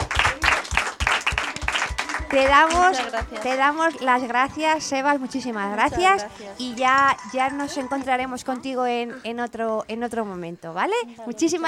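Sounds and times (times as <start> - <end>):
crowd applauding a singer at a school: 0.0 - 4.2
speech: 2.3 - 11.6.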